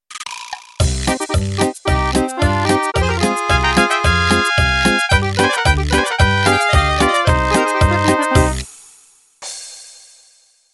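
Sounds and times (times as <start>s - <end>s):
mariachi music intro: 1.1s - 8.7s.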